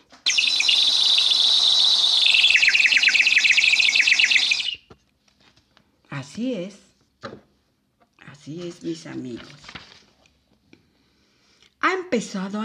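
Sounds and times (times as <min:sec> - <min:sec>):
high thin bird song chirping: 0:00.2 - 0:04.9
speech: 0:06.2 - 0:07.4, 0:08.5 - 0:09.6, 0:12.1 - 0:12.6.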